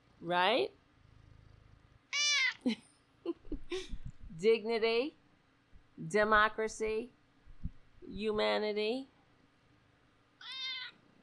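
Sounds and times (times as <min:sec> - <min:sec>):
speech: 0:00.2 - 0:00.8, 0:02.6 - 0:05.2, 0:06.0 - 0:07.2, 0:08.0 - 0:09.1
cat meowing: 0:02.1 - 0:02.6, 0:10.4 - 0:11.0.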